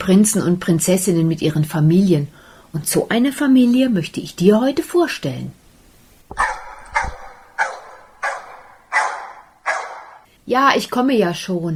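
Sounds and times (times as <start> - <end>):
speech: 0.0 - 5.6, 6.3 - 7.2, 10.5 - 11.7
two dogs barking: 6.3 - 10.3.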